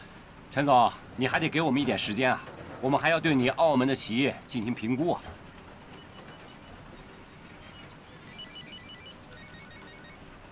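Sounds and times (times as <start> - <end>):
steady noise: 0.0 - 10.5
speech: 0.5 - 5.4
telephone ringing: 5.8 - 10.5.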